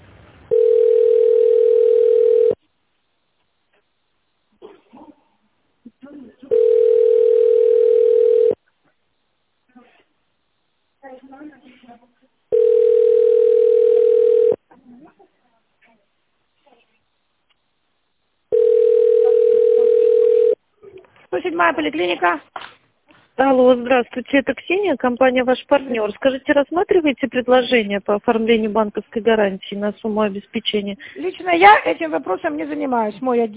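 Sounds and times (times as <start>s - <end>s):
telephone ringback tone as a call is transferred: 0.5s - 2.6s, 6.5s - 8.6s, 12.5s - 14.6s, 18.5s - 20.6s
speech: 21.6s - 22.6s, 23.4s - 33.5s.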